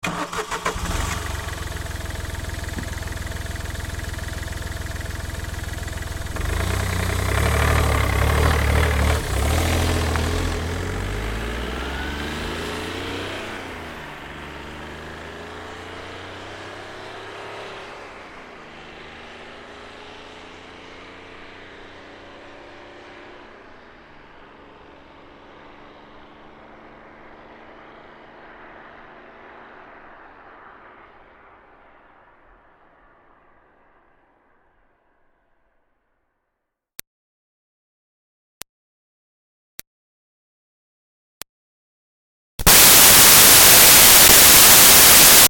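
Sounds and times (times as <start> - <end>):
2005 Smart Fortwo car starting and pulling away with slow chug: 0.0 - 32.2, 42.6 - 45.4.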